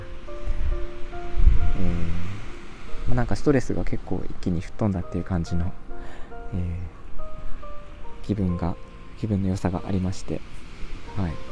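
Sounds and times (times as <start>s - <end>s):
ocean waves washing against the shore: 0.0s - 11.5s
speech: 3.2s - 7.0s, 8.3s - 10.6s, 11.2s - 11.5s.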